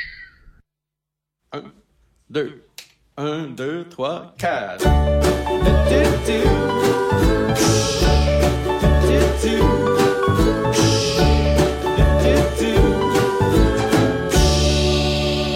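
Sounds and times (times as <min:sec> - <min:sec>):
speech: 0:01.5 - 0:08.6
full band playing an instrumental song intro: 0:04.8 - 0:15.4
steady drum beat: 0:04.9 - 0:14.9.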